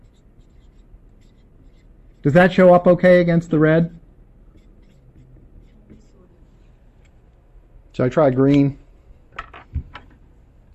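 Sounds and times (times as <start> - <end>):
marker squeaking and scratching across a board: 0.0 - 2.4, 4.5 - 6.2
speech: 2.2 - 4.0, 8.0 - 8.8.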